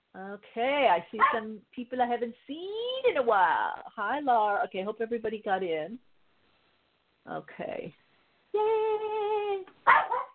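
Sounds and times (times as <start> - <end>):
speech: 0.2 - 6.1, 7.2 - 9.2
dog barking: 1.2 - 1.4, 9.9 - 10.3.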